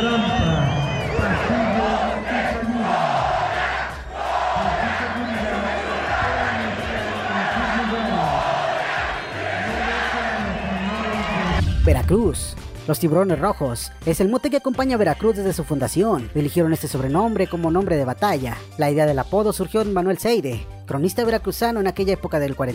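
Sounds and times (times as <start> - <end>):
huge stadium crowd chanting a university team cheer: 1.0 - 11.6
speech: 12.1 - 22.7.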